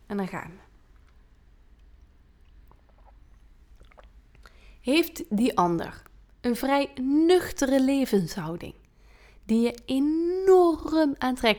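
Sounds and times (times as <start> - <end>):
low steady hum: 0.0 - 11.5
speech: 0.1 - 0.7, 4.8 - 8.8, 9.5 - 11.5
soft gulps: 0.9 - 4.8
person sipping water: 1.0 - 4.8.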